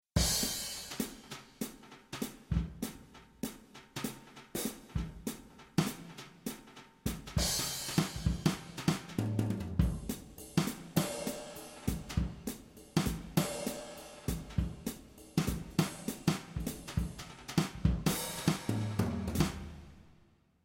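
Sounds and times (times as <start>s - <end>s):
drum set played with brushes: 0.2s - 20.0s.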